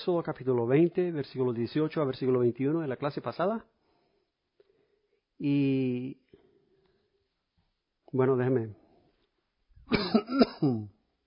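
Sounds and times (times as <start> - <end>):
speech: 0.0 - 3.8, 5.4 - 6.3, 8.1 - 8.8, 9.9 - 11.0
person coughing while giving a Bible lesson: 9.9 - 11.0.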